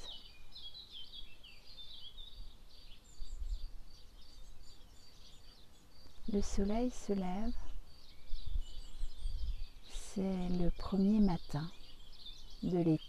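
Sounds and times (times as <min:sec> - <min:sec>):
several birds singing and chirping: 0:00.0 - 0:13.0
speech: 0:06.3 - 0:07.7, 0:10.2 - 0:11.8, 0:12.6 - 0:13.0.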